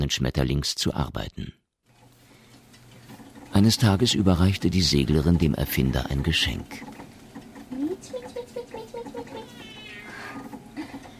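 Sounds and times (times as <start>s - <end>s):
speech: 0.1s - 1.6s, 3.6s - 7.0s
black-and-white cat meowing aboard a ship: 9.3s - 10.5s.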